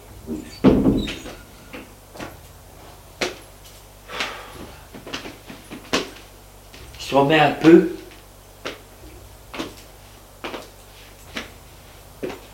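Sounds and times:
heavy door thump in a corridor: 0.2s - 1.4s
speech: 7.1s - 8.0s.

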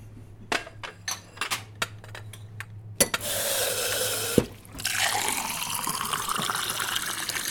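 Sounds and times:
tap water running as a glass is rinsed in a small bar: 3.2s - 7.5s.

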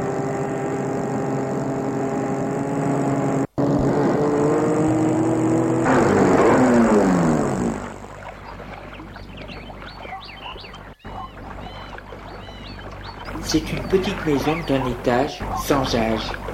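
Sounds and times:
car engine rumbling as the car slows and stops: 0.0s - 16.5s
speech: 13.5s - 16.4s.

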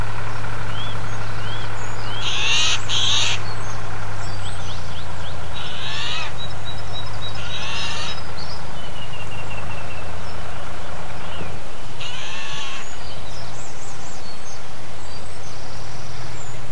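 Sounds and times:
tractor engine droning: 0.0s - 16.6s
Eurasian jay screeching: 2.2s - 3.4s, 5.5s - 6.4s, 7.3s - 8.2s, 12.0s - 13.0s.

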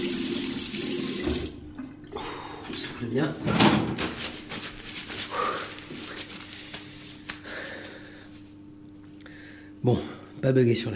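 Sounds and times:
water running from a tap: 0.0s - 1.6s
speech: 2.8s - 4.2s, 9.8s - 10.9s.

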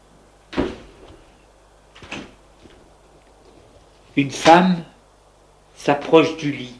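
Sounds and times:
quiet room hum: 0.0s - 6.7s
door swinging thud: 0.5s - 1.2s, 2.0s - 2.4s
speech: 4.2s - 4.9s, 5.8s - 6.7s.

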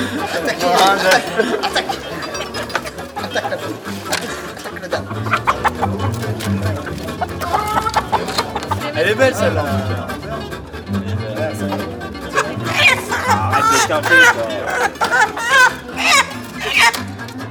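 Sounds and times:
rooster clucking: 0.0s - 9.0s, 12.2s - 17.1s
dense busy poultry chatter: 0.0s - 17.4s
laughter: 0.0s - 17.4s
people talking: 0.0s - 17.4s.

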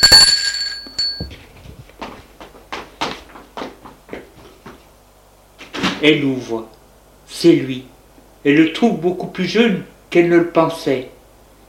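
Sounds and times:
doorbell ringing: 0.0s - 1.4s
soft knocks and thumps: 1.1s - 4.8s
speech: 6.0s - 6.8s, 7.4s - 11.1s.

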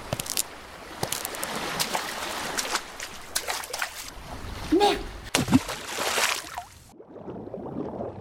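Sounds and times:
water lapping and splashing: 0.0s - 8.0s.

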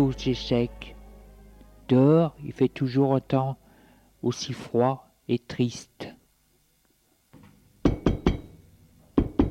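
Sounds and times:
speech: 0.0s - 1.0s, 1.9s - 3.6s, 4.2s - 6.0s
sharp knocking on a drawing room door: 7.8s - 8.4s, 9.2s - 9.4s.

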